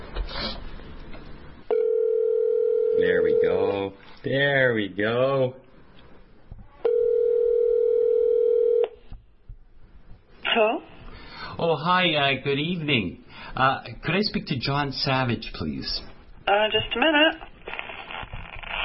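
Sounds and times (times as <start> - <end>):
droning telephone dial tone: 1.7 - 3.0, 6.9 - 9.0
speech: 3.5 - 5.6, 11.7 - 17.4.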